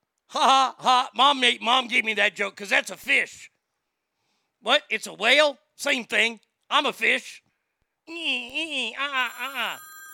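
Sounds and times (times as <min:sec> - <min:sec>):
speech: 0:00.3 - 0:03.5, 0:04.6 - 0:07.4, 0:08.1 - 0:09.9
telephone ringing with a warbling ring: 0:09.2 - 0:10.1.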